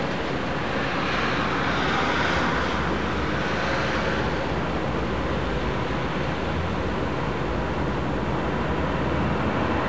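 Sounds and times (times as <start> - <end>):
ambient city: 0.0 - 9.8.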